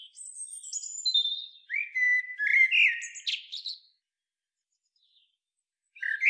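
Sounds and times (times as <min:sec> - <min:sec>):
Eurasian blackbird Turdus merula twittering and whistling: 0:00.0 - 0:03.7, 0:06.0 - 0:06.2.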